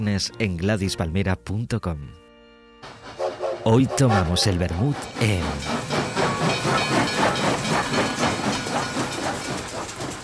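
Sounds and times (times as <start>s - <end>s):
speech: 0.0s - 2.2s, 3.6s - 6.0s
steam train hissing and chuffing: 2.8s - 10.2s.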